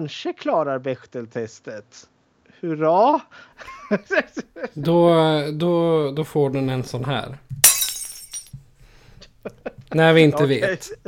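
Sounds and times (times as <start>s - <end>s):
speech: 0.0s - 7.4s, 9.4s - 11.0s
laughter: 3.6s - 5.0s
glass shards tinkling and clinking: 7.6s - 8.6s
glass shattering: 7.6s - 8.6s.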